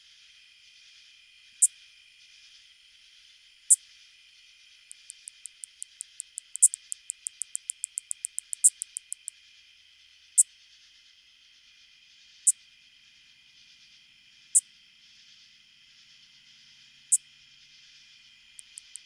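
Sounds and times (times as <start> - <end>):
soft hum: 0.0 - 19.0
greater angle-wing katydid song of ticks and clicks: 4.8 - 9.4, 18.5 - 19.0.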